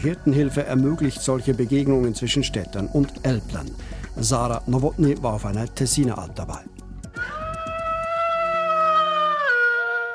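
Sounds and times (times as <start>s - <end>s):
speech: 0.0s - 6.8s
shepherd's mobile phone ringtone of a wolf howling on an alp: 7.2s - 10.1s.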